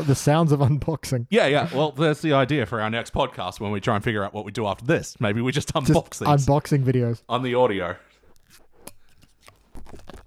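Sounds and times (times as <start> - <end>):
speech: 0.0 - 8.6
foil being cut off a wine bottle: 7.3 - 10.2.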